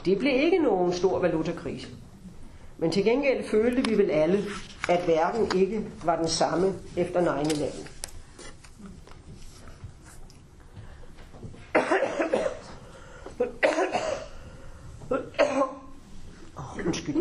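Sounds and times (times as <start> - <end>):
speech: 0.0 - 2.1, 2.8 - 7.9
harsh coughing fit: 11.7 - 12.8, 13.4 - 14.4, 15.1 - 15.9.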